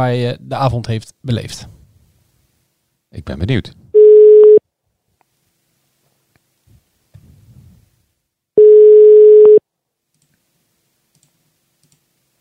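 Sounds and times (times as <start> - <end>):
speech: 0.0 - 1.8, 3.1 - 3.8
telephone ringback tone while a call is being placed: 4.0 - 4.6, 8.6 - 9.6.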